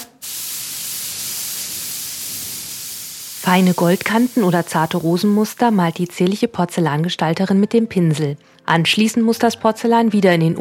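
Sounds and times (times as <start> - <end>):
airbrush spraying paint onto porcelain: 0.0 - 6.2
speech: 3.5 - 10.5.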